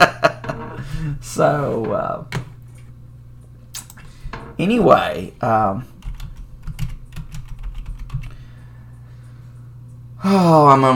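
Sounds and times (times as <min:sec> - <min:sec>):
speech: 0:01.1 - 0:02.4, 0:04.6 - 0:05.9, 0:10.2 - 0:10.9
fingers typing on a computer keyboard: 0:06.0 - 0:08.4.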